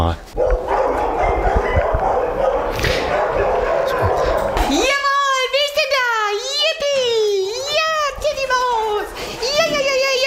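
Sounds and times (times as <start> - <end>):
speech: 0.0 - 0.4
dog barking excitedly in greeting: 0.4 - 10.2
people's voices: 2.7 - 10.2.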